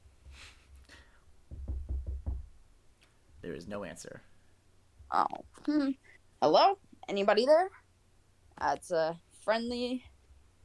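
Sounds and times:
firm knocks on a door: 1.5s - 2.6s
speech: 3.4s - 4.3s, 5.1s - 7.8s, 8.6s - 10.1s.

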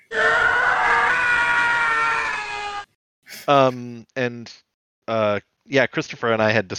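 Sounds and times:
person imitating a stock movie scream sound effect: 0.0s - 3.0s
speech: 3.5s - 6.7s.

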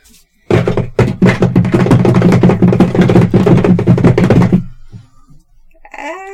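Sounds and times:
rapid loud tapping imitating many small legs skittering: 0.5s - 5.0s.

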